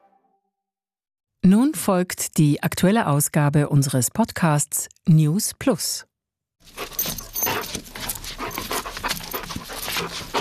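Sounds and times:
speech: 1.4 - 6.8
Hovawart dog panting: 6.6 - 10.3
faint jingling: 6.7 - 10.3.

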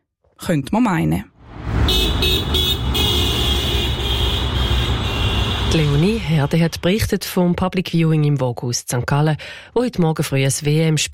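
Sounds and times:
speech: 0.5 - 1.3, 5.7 - 11.1
steady low engine rumble of street traffic: 1.4 - 7.1.

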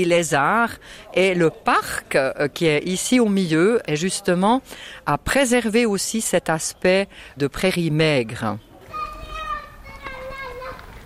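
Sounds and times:
speech: 0.0 - 8.7
children chattering and calling out in an outdoor play area: 8.4 - 11.0
children shouting: 8.8 - 11.0.

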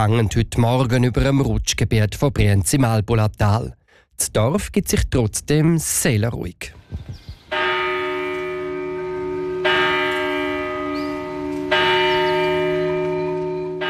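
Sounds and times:
speech: 0.0 - 7.3
church bell of a church in Brienz in the Albula valley, Graubünden, Switzerland: 7.5 - 13.8.

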